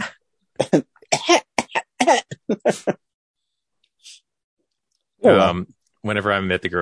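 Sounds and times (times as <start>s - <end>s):
person imitating a small child's raspy cough: 0.0s - 3.0s
speech: 0.7s - 1.5s, 5.2s - 6.8s.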